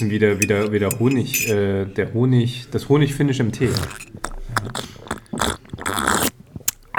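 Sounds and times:
speech: 0.0 - 4.9
mouth smacking sounds while tasting a drink: 3.6 - 6.9
person slurping a sweetened drink of syrup mixed with water: 3.6 - 6.9.

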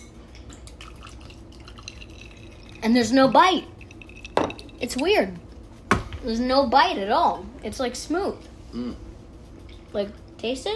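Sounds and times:
filtered fridge water pouring into a glass: 0.7 - 4.8
speech: 2.8 - 3.7, 4.8 - 5.4, 6.2 - 9.0, 9.9 - 10.7.

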